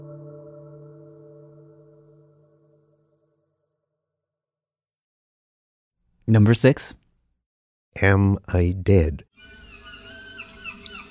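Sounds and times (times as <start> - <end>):
speech: 6.3 - 7.0, 7.9 - 9.6
seagulls giving short high cries: 9.4 - 11.0.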